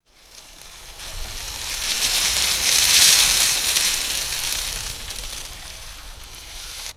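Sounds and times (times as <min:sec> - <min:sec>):
wind gust rustling dry dead leaves: 0:00.0 - 0:06.9.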